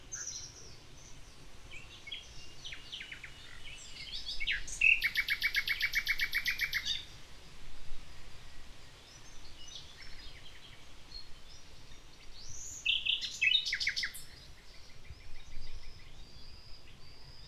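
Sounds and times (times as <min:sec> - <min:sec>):
common nightingale singing in the morning in the village of Riumors: 0:00.0 - 0:07.2, 0:08.4 - 0:17.4
steady wind noise on a Tramuntana day: 0:14.5 - 0:17.4.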